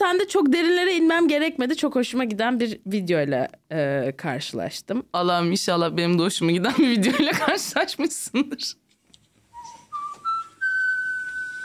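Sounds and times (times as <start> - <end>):
speech: 0.0 - 8.8
laughter: 6.7 - 7.9
person whistling a short melody: 9.6 - 11.6.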